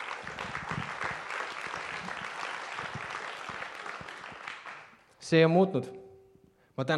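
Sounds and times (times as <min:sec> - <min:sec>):
audience applause: 0:00.0 - 0:05.1
speech: 0:05.3 - 0:06.0, 0:06.8 - 0:06.9.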